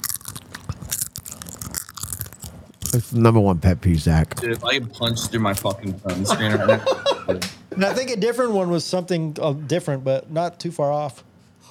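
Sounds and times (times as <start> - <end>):
loud wet crunchy chewing: 0.0 - 3.1
speech: 2.9 - 11.3
laughter: 6.0 - 7.5.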